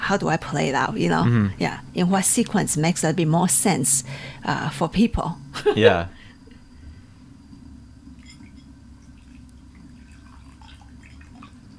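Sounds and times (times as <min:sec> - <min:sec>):
speech: 0:00.1 - 0:06.2
water pouring in a steady stream: 0:09.1 - 0:11.7.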